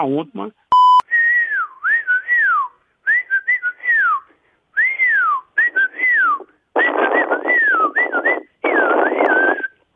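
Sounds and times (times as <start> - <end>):
speech: 0.0 - 0.7
person whistling a lilting tune: 1.0 - 9.8.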